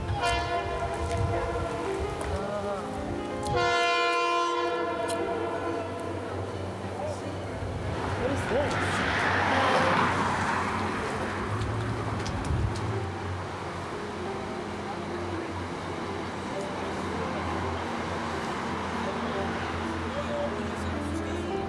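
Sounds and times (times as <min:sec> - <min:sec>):
train horn blaring: 0:00.0 - 0:02.2, 0:03.5 - 0:06.6
roar of rolling train wheels: 0:00.0 - 0:21.6
train rumbling past: 0:00.0 - 0:21.6.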